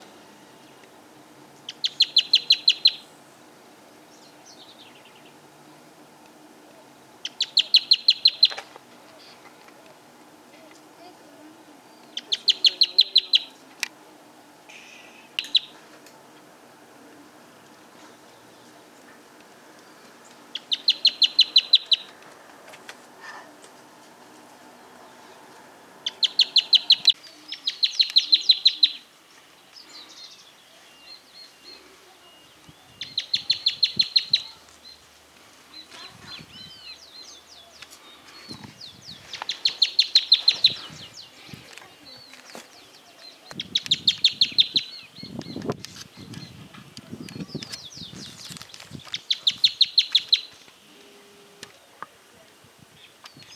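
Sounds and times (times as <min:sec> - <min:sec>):
bandurrita chaqueña calling: 0:01.6 - 0:03.2, 0:07.2 - 0:09.6, 0:11.9 - 0:13.6, 0:14.7 - 0:15.9, 0:19.8 - 0:22.2, 0:26.0 - 0:35.0, 0:35.7 - 0:45.4, 0:46.2 - 0:51.9.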